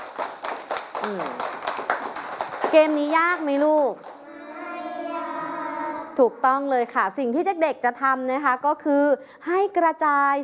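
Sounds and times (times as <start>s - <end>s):
children clapping in a classroom: 0.0s - 4.9s
speech: 1.0s - 1.5s, 2.7s - 4.1s, 6.2s - 10.4s.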